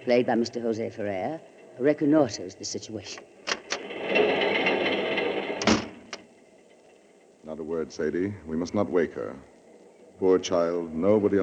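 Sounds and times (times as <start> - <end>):
speech: 0.0 - 3.4, 7.5 - 9.5, 10.2 - 11.4
door creaking as it swings: 3.0 - 7.0
door closing with a solid thud: 5.6 - 6.2.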